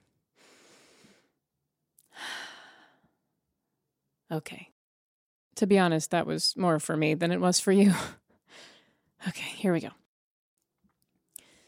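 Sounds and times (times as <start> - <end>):
deep breath in and sighing breath out: 0.4 - 1.4, 2.1 - 3.2
speech: 4.3 - 4.7, 5.6 - 10.0.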